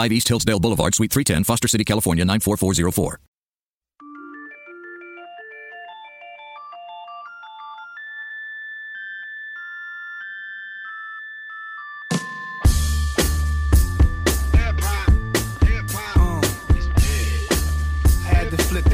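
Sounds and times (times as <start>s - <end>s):
speech: 0.0s - 3.3s
phone ringtone with electronic melody: 4.0s - 18.9s.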